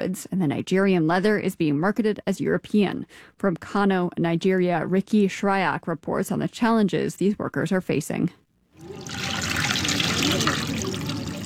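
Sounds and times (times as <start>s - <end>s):
speech: 0.0s - 9.4s
water sloshing and trickling as cotton cloth is dunked in a dye pit: 8.8s - 11.4s.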